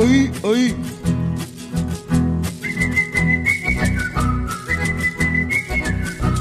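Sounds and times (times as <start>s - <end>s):
speech: 0.2s - 1.0s
person whistling a short clear tune: 2.6s - 6.3s.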